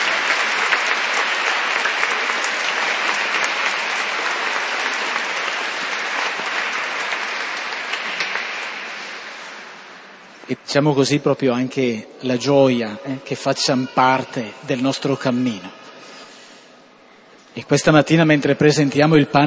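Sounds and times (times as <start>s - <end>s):
audience applauding after a baptism: 0.0s - 10.5s
speech: 10.7s - 15.8s, 17.6s - 19.4s.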